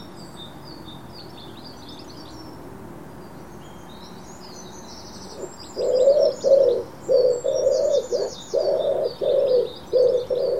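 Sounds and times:
bird hooting: 5.4 - 10.5.

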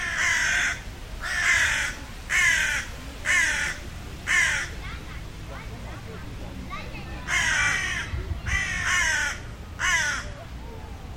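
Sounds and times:
bird giving harsh hoarse caw-like calls: 0.0 - 4.8, 7.2 - 10.4
steady background hiss: 0.0 - 11.1.

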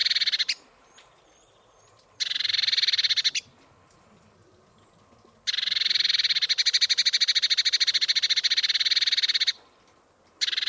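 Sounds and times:
Eurasian blue tit rattling churr: 2.2 - 3.5, 5.5 - 9.6, 10.4 - 10.6.

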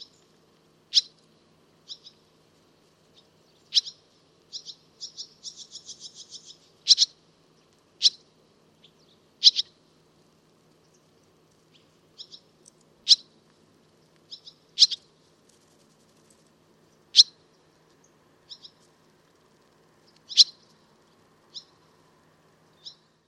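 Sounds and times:
barn swallow chirping and twittering: 1.9 - 2.2, 3.2 - 7.2, 8.8 - 9.8, 11.7 - 12.4, 14.3 - 15.1, 18.5 - 18.8, 20.3 - 20.7, 22.8 - 23.1.

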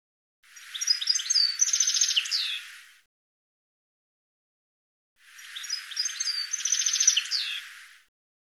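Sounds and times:
bird song with rapid chirps, twitters, buzzy trills and downslurred notes: 0.5 - 2.9, 5.2 - 8.0.

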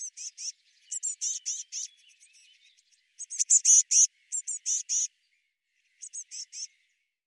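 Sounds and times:
Eurasian blue tit giving high thin notes: 0.0 - 2.6, 3.2 - 5.1, 6.0 - 6.8.

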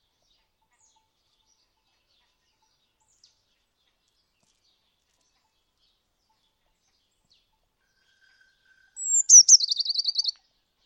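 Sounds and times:
bird call with thin whistle and buzzy descending trill: 8.8 - 10.4.

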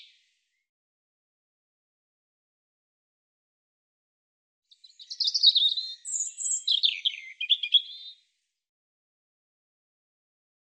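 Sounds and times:
European robin song: 4.7 - 8.2.

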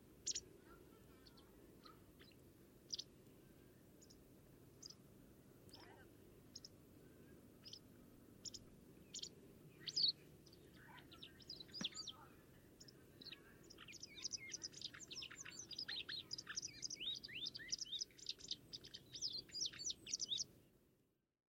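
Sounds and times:
soft steady background hiss: 0.0 - 21.0
white wagtail calls: 0.2 - 0.5, 8.4 - 12.2, 12.8 - 20.4.

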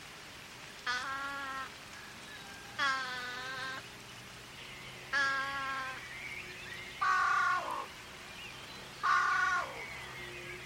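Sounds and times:
harsh nasal bird calls: 2.4 - 3.8, 4.6 - 10.6.

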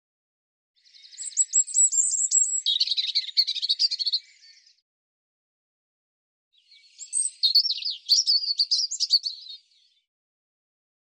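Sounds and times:
European robin singing: 0.8 - 4.8, 6.6 - 10.1.

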